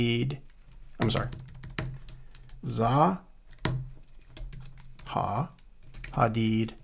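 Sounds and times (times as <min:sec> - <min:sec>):
speech: 0:00.0 - 0:01.5, 0:02.6 - 0:03.3, 0:05.1 - 0:06.8
typing on a computer keyboard: 0:00.4 - 0:02.6, 0:03.6 - 0:06.8.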